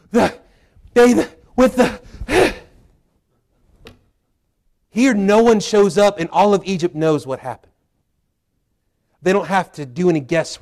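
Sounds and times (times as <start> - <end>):
voice imitating panting out of breath: 0.0 - 3.8
speech: 0.1 - 0.4, 1.0 - 2.1, 5.0 - 7.7, 9.2 - 10.6.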